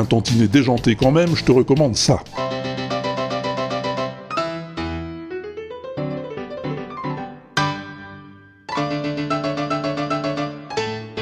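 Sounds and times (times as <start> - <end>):
speech: 0.0 - 2.6
lively classical piece played on piano: 2.4 - 11.1.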